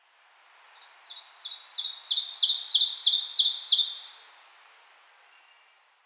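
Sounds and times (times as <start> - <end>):
ovenbird Seiurus aurocapilla singing: 1.0 - 4.1.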